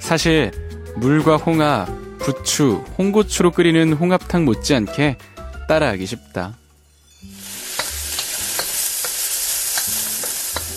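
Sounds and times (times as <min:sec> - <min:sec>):
speech: 0:00.1 - 0:06.6
garlic and chili sautéing in olive oil: 0:06.8 - 0:10.7.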